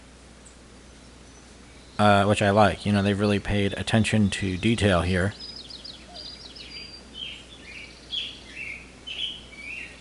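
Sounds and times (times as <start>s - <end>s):
birds chirping and calling: 0.0s - 9.9s
light breeze: 0.0s - 9.9s
speech: 2.0s - 5.5s.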